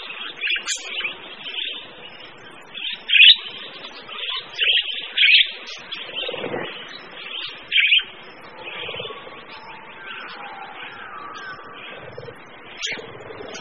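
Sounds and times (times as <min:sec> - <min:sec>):
mixed birds singing together: 0:00.0 - 0:13.5.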